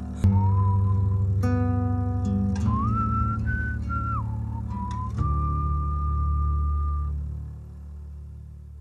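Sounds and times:
clear melodic whistled tune: 0.1 - 7.4.

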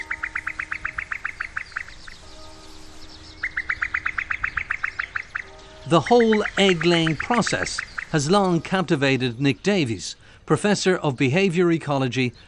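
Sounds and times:
female common cuckoo bubbling call on a fen: 0.0 - 8.7
speech: 5.9 - 12.4.

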